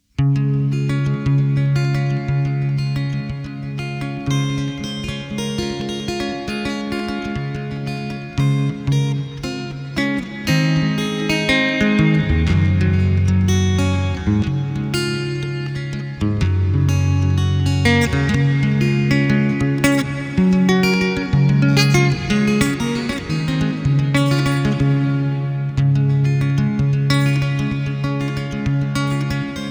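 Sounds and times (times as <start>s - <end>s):
guitar dance music in D major: 0.2s - 29.7s.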